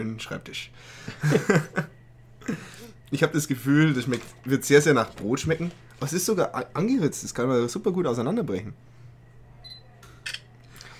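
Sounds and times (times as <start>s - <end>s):
speech: 0.0s - 1.9s, 2.5s - 8.9s
low steady hum: 0.0s - 10.9s
laughter: 1.1s - 2.6s
camera focus beep: 9.6s - 10.5s.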